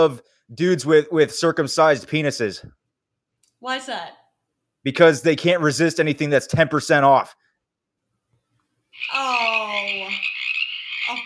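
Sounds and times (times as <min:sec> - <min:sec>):
speech: 0:00.0 - 0:02.8, 0:03.6 - 0:04.2, 0:04.8 - 0:07.4, 0:09.0 - 0:10.2
frog croaking: 0:09.0 - 0:11.2.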